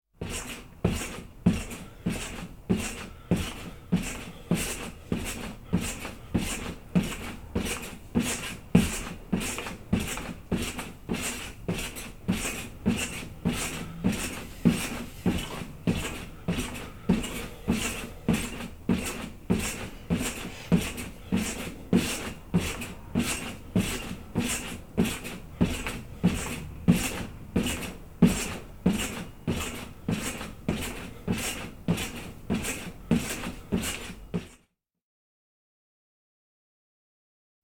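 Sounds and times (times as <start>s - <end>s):
trampoline general atmosphere: 0.2s - 34.6s.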